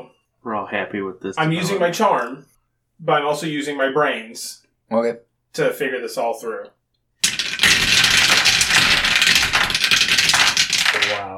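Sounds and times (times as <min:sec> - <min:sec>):
speech: 0:00.0 - 0:07.4
dice rattling across a table: 0:07.2 - 0:11.3.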